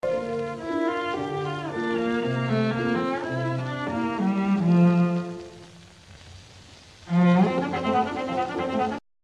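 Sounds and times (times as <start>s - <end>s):
arpeggione: 0.0s - 5.7s, 7.1s - 9.0s.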